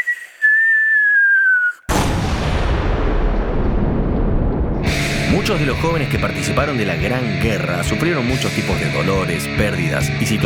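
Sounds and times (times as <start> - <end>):
falling bomb whistle in a First World War setting: 0.0 - 3.9
loud explosion: 1.9 - 7.4
speech: 5.4 - 10.4.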